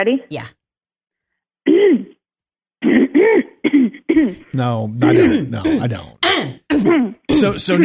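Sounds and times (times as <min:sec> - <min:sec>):
speech: 0:00.0 - 0:00.6, 0:02.9 - 0:07.8
nervous throat clearing: 0:01.7 - 0:02.2, 0:02.8 - 0:07.8.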